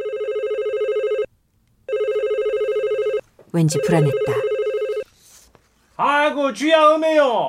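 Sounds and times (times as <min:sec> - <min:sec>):
telephone ringing with a bright electronic trill: 0:00.0 - 0:01.3, 0:01.9 - 0:05.0
speech: 0:03.6 - 0:04.5, 0:06.0 - 0:07.4.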